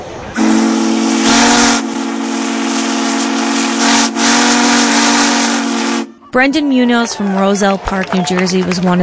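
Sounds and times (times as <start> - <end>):
steam locomotive whistle blowing: 0.4 - 6.5
speech: 6.3 - 9.0.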